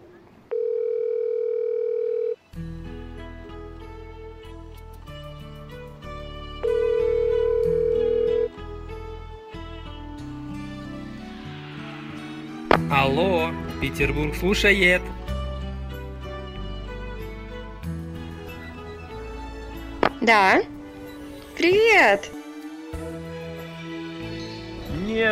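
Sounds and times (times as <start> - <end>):
telephone line tones while a call is being connected: 0.5 - 2.4, 6.6 - 8.5
music: 2.4 - 25.2
speech: 13.0 - 15.1, 20.3 - 20.7, 21.6 - 22.4.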